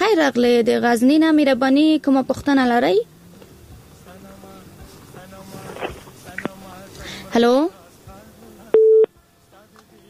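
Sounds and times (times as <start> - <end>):
speech: 0.1 - 3.2, 7.3 - 7.8
telephone busy tone after a call disconnects: 8.8 - 9.1.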